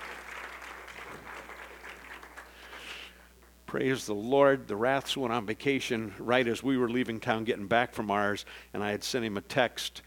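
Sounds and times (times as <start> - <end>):
audience applauding at a church service: 0.0 - 3.1
speech: 3.7 - 10.0.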